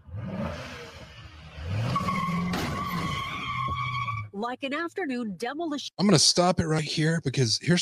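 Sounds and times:
car engine revving: 0:00.0 - 0:03.1
car tires screeching as a driver rams other vehicles: 0:00.1 - 0:04.4
speech: 0:04.4 - 0:07.8.

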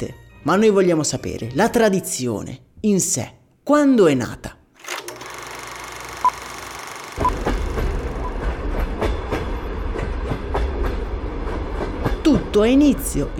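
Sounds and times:
speech: 0:00.0 - 0:04.6, 0:12.6 - 0:13.3
train rolling along the rails: 0:07.2 - 0:13.3.

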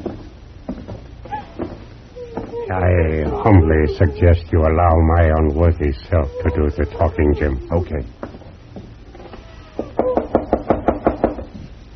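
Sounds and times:
faint noise: 0:00.0 - 0:11.9
speech: 0:02.7 - 0:08.2
knocking on a house door: 0:09.9 - 0:11.5.

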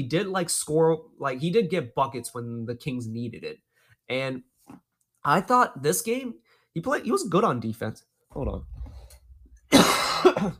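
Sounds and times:
speech: 0:00.0 - 0:08.7, 0:10.4 - 0:10.5
person coughing: 0:09.7 - 0:10.5.

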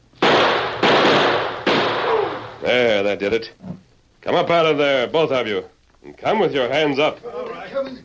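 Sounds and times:
loud harsh gunshots: 0:00.2 - 0:02.8
speech: 0:02.7 - 0:08.0.

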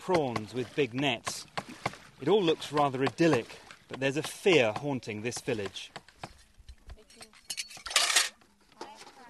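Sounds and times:
speech: 0:00.0 - 0:01.5, 0:02.2 - 0:06.0
water splashing beside a small brackish pond: 0:00.0 - 0:06.3
dishes and utensils clinking as a woman washes them beside a brackish pond: 0:07.0 - 0:08.4.

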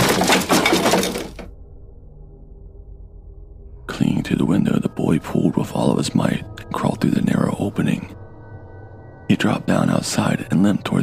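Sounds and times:
heavy stack of wooden coffins tipping over and crashing to the ground: 0:00.0 - 0:01.5
speech: 0:04.3 - 0:08.2, 0:09.4 - 0:11.0.

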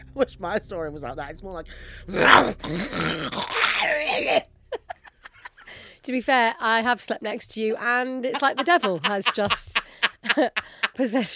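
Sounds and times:
speech: 0:00.2 - 0:04.5, 0:06.0 - 0:09.8, 0:10.4 - 0:11.3
breaths: 0:01.7 - 0:02.1, 0:05.6 - 0:06.1, 0:09.8 - 0:11.0
person imitating a rough growling snore: 0:02.2 - 0:03.8
laughter: 0:04.8 - 0:05.9, 0:08.2 - 0:11.3.

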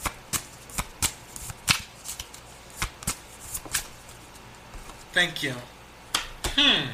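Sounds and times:
playing cards being shuffled and drawn: 0:00.3 - 0:05.1
speech: 0:05.2 - 0:05.8, 0:06.6 - 0:06.9.

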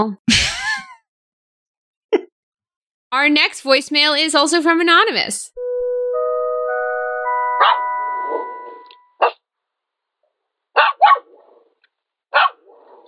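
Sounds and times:
speech: 0:00.0 - 0:00.3, 0:03.1 - 0:06.0
electronic tones: 0:05.6 - 0:09.2
dog barking: 0:07.6 - 0:07.8, 0:09.2 - 0:09.4, 0:10.8 - 0:13.0.

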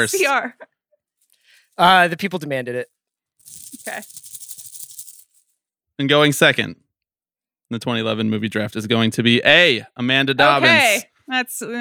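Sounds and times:
speech: 0:00.0 - 0:00.7, 0:01.8 - 0:04.3, 0:06.0 - 0:06.8, 0:07.7 - 0:11.7
paper slips shaken inside a baseball cap: 0:03.4 - 0:05.5.

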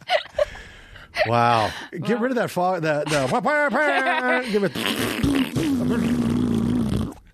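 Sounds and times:
speech: 0:01.3 - 0:06.1
laughter: 0:02.9 - 0:04.9
loud fart sound made by a voice: 0:04.7 - 0:07.3.

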